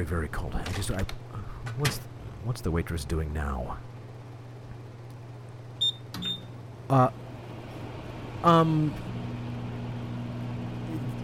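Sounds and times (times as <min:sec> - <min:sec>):
speech: 0:00.0 - 0:03.9, 0:06.9 - 0:07.2, 0:08.4 - 0:09.1
microwave oven humming: 0:00.0 - 0:11.2
two short high-pitched microwave beeps: 0:05.8 - 0:06.6.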